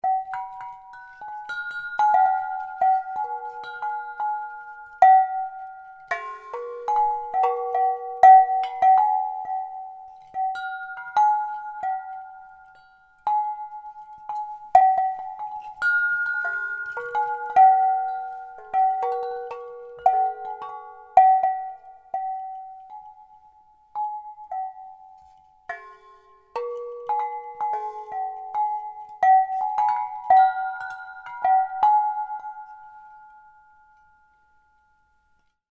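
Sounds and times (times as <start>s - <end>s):
wind chimes made from a squashed pipe: 0.0s - 35.6s.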